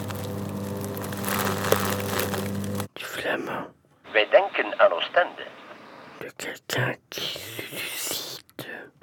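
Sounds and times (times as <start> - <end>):
leaf-shredding machine grinding: 0.0 - 2.9
speech: 3.3 - 5.5, 6.2 - 7.4.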